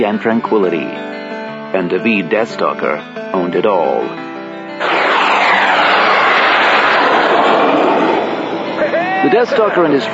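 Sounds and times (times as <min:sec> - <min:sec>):
speech: 0:00.0 - 0:04.2, 0:09.2 - 0:10.1
modified futuristic flyer racing at high speed in and out of trees: 0:04.8 - 0:08.9.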